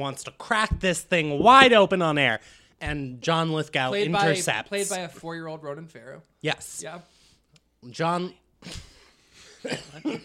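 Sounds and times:
speech: 0.0s - 7.2s, 7.8s - 8.9s, 9.6s - 10.2s
person coughing: 9.6s - 10.2s.

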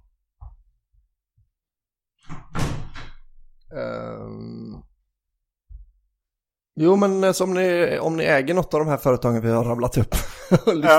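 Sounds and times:
door banging in the wind: 2.2s - 3.5s
door creaking groan: 2.2s - 3.8s
speech: 3.7s - 4.9s, 6.8s - 10.9s.

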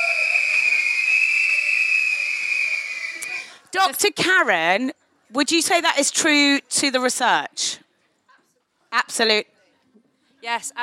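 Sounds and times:
whistle being blown: 0.0s - 3.3s
speech: 3.7s - 7.8s, 8.9s - 9.5s, 10.4s - 10.8s.

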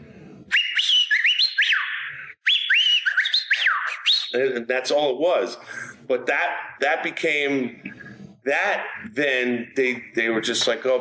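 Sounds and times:
cartoon robot character whistling a bright tune: 0.5s - 4.5s
speech: 4.3s - 10.9s.

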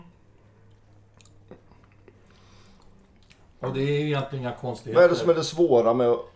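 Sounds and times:
noisy chewing of crisp meringue dessert: 0.3s - 3.6s
wet mouth clicks: 0.6s - 3.5s
speech: 3.6s - 6.3s.

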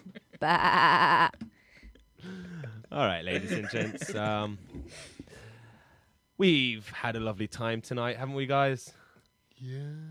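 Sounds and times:
person imitating a sheep bleat: 0.4s - 1.3s
speech: 0.4s - 1.4s, 2.2s - 5.1s, 6.4s - 9.0s, 9.6s - 10.0s
laughter: 2.4s - 5.1s.

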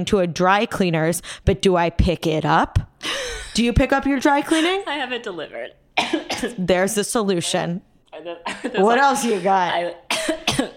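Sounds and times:
speech: 0.0s - 10.4s
person coughing and choking after inhaling rosé wine down the wrong tube: 6.0s - 6.7s, 8.4s - 10.7s.

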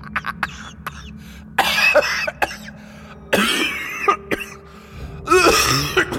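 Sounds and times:
man coughing in harsh sputtering fits: 0.0s - 2.7s, 3.3s - 4.7s, 5.3s - 6.1s.

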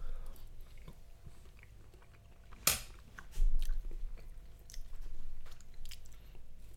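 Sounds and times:
people biting and chewing garlicky food: 0.2s - 6.7s.

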